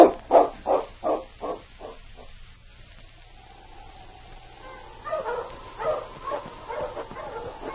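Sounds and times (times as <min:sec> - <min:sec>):
several dogs barking: 0:00.0 - 0:02.3, 0:03.2 - 0:07.7.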